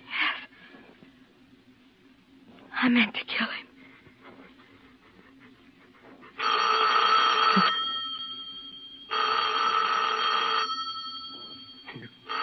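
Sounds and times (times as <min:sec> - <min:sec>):
faint hum: 0:00.0 - 0:12.4
speech: 0:02.8 - 0:03.6
telephone bell ringing: 0:06.4 - 0:12.4.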